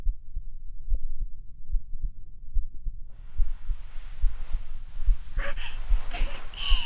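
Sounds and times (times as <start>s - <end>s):
rapid heartbeat: 1.7s - 6.8s
soft rustling hiss: 3.2s - 6.8s.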